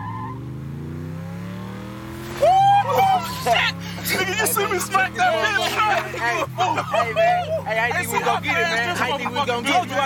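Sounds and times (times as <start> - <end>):
car engine accelerating away: 0.0 - 10.0
laughter: 2.4 - 10.0
speech: 4.1 - 10.0.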